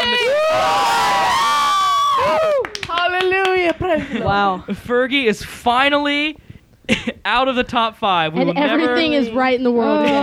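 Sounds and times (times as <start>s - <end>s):
audience cheering, hooting and applauding: 0.0s - 3.5s
speech: 4.0s - 10.2s.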